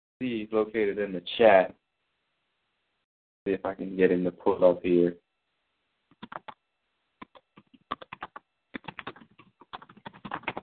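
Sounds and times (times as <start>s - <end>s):
speech: 0.2s - 1.8s, 3.4s - 5.2s
typing on a computer keyboard: 6.2s - 6.6s, 7.2s - 10.6s.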